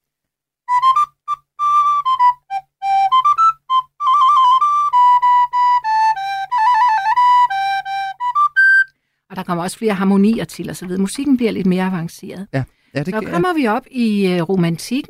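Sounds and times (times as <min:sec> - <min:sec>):
recorder playing a bright clear melody with refined tone: 0:00.7 - 0:08.9
speech: 0:09.5 - 0:15.0.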